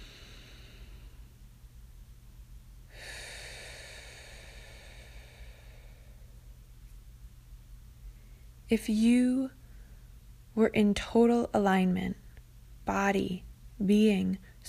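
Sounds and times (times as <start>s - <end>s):
deep breath in and out: 0.0s - 1.3s, 2.9s - 6.5s
low steady hum: 0.0s - 14.6s
speech: 8.7s - 9.6s, 10.6s - 12.2s, 12.9s - 14.6s.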